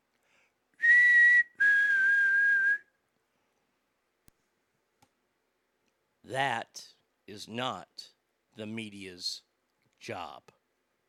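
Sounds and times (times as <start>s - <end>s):
whistle blown to get attention: 0.8s - 2.8s
speech: 6.3s - 10.6s.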